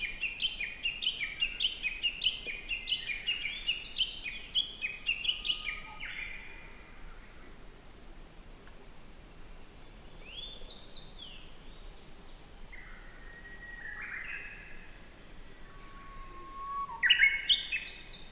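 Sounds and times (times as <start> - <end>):
Japanese bush warbler singing: 0.0 - 6.4, 9.6 - 15.5, 16.1 - 18.3.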